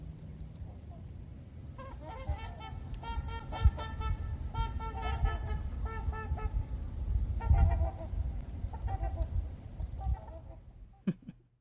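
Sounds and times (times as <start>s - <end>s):
Trumpeter Swan nasal horn-like honks: 1.7s - 6.7s, 7.3s - 9.4s.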